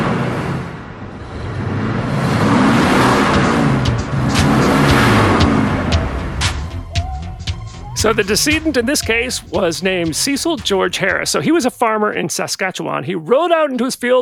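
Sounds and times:
tractor engine revving: 0.0 - 11.4
speech: 8.0 - 14.2.

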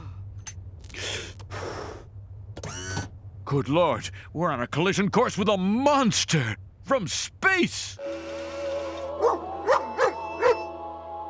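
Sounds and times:
speech: 3.5 - 8.0
dog giving short whiny barks: 9.2 - 10.6.

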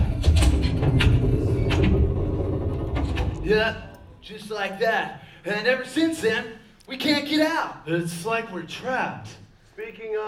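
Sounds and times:
soundstage doors slamming shut: 0.0 - 3.9
speech: 3.5 - 10.2.

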